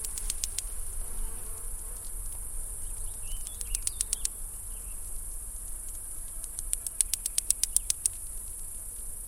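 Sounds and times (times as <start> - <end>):
cicada sharp ticks: 0.0 - 0.8, 3.4 - 4.4, 5.8 - 8.8
cicada buzzing: 0.0 - 9.2.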